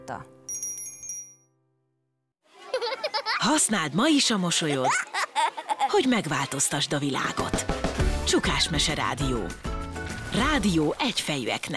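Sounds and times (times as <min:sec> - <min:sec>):
speech: 0:00.1 - 0:00.6, 0:03.4 - 0:05.2, 0:05.9 - 0:07.6, 0:08.3 - 0:09.7, 0:10.4 - 0:11.7
small bell ringing: 0:00.5 - 0:01.5
laughter: 0:02.6 - 0:03.7, 0:04.5 - 0:06.5.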